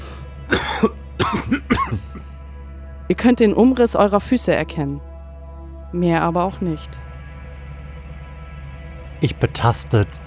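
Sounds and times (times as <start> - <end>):
person coughing from dusty air: 0.5 - 2.3
speech: 0.8 - 1.5, 3.1 - 5.1, 5.9 - 7.0, 9.2 - 10.2.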